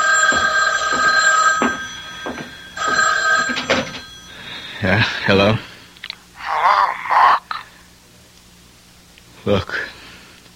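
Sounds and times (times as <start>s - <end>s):
telephone bell ringing: 0.0s - 5.3s
speech: 4.8s - 5.7s, 9.5s - 9.9s.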